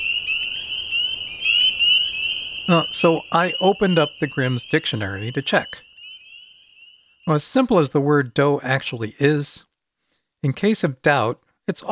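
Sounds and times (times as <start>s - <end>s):
frog croaking at a pond: 0.0s - 7.4s
speech: 2.7s - 5.9s, 7.2s - 9.7s, 10.4s - 11.9s.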